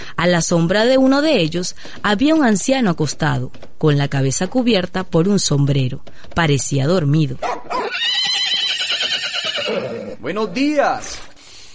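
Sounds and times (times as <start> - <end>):
speech: 0.2 - 7.6, 10.2 - 11.2
horse neighing: 7.7 - 10.3.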